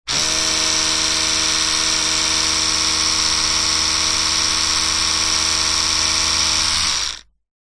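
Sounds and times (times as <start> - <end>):
household electric toothbrush running down: 0.1 - 7.3.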